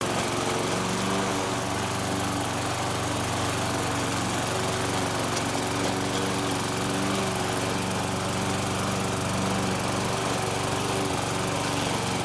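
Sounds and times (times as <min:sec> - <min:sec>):
lawn mower: 0:00.0 - 0:12.2.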